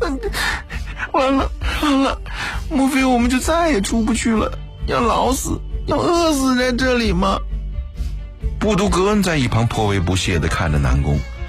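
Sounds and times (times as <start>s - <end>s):
frightened man sobbing and moaning in fear: 0.0s - 2.7s
speech: 1.2s - 2.2s, 3.3s - 7.5s, 8.6s - 11.3s.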